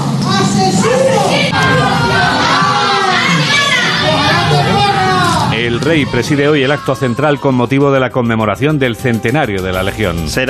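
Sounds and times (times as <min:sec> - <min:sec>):
crowd of neighbours in Bonesterio Badajoz province Spain shouting angrily: 0:00.3 - 0:07.9
speech: 0:05.8 - 0:10.4.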